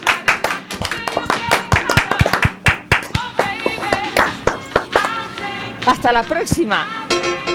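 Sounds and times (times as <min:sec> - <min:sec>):
people clapping: 0:00.0 - 0:05.5
speech: 0:05.9 - 0:07.4.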